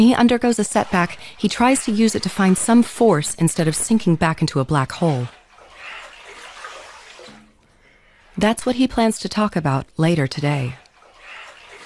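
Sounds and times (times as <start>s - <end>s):
speech: 0.0s - 5.4s, 8.4s - 10.8s
low water gurgle: 0.0s - 7.6s, 10.7s - 11.8s
water sloshing in an ice bath tub: 0.0s - 8.8s, 10.4s - 11.8s.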